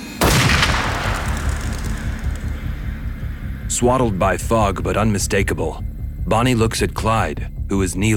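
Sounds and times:
gunshot echoing through trees in foggy morning air: 0.2s - 3.6s
speech: 3.8s - 8.1s.

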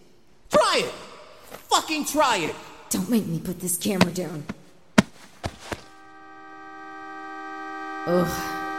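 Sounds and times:
speech: 0.8s - 4.6s, 8.0s - 8.5s
sharp knocks: 4.0s - 5.9s.

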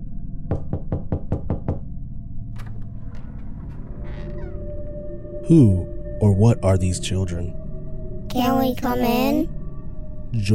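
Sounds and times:
quick knocks on a door: 0.5s - 1.8s
speech: 5.5s - 7.6s, 8.4s - 9.6s, 10.3s - 10.5s.

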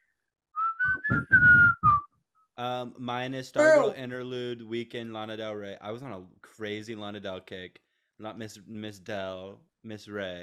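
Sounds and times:
bright whistled melody from a house music track: 0.6s - 2.2s
speech: 1.1s - 1.8s, 2.6s - 10.4s.

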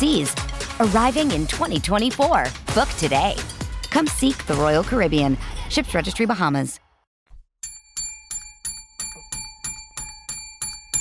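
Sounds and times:
speech: 0.0s - 6.8s
bright metallic bell ringing: 7.6s - 11.0s.

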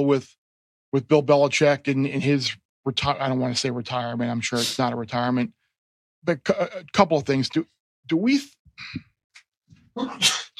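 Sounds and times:
speech: 0.0s - 5.6s, 6.2s - 9.1s, 10.0s - 10.4s
person sneezing: 10.0s - 10.5s.

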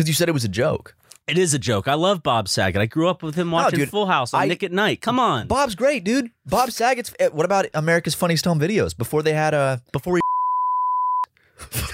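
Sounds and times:
speech: 0.0s - 10.2s
censor bleep pure tone: 10.2s - 11.3s.

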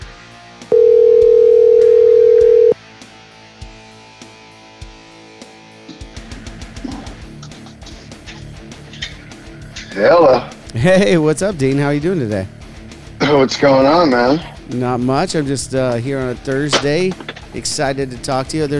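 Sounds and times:
telephone dial tone: 0.7s - 2.8s
speech: 10.0s - 12.6s, 13.3s - 18.7s.

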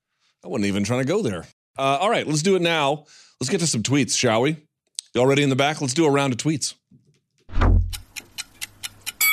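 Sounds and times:
speech: 0.4s - 6.8s
low thud: 7.5s - 8.0s
sharp clock ticks in a countdown sound effect: 7.8s - 9.2s.

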